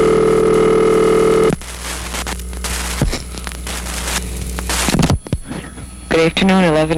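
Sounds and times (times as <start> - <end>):
loud steady telephone dial tone: 0.0 - 1.6
soft telephone line hum: 0.0 - 6.9
faint clicks and crackle as the call connects: 0.9 - 5.9
speech: 6.2 - 6.9.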